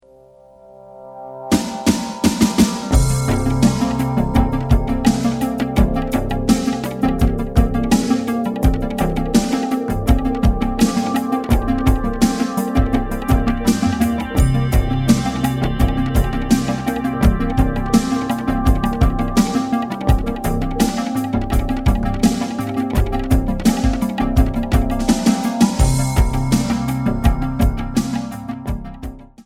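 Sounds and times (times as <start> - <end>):
synthesizer: 0.0 - 29.4
jazz drums: 1.5 - 29.4.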